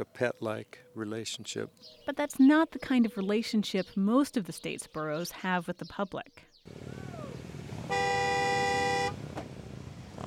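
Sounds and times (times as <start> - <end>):
speech: 0.0 - 7.0
rumbling outdoor road noise: 6.7 - 10.2
horn blast on highway: 7.7 - 9.3.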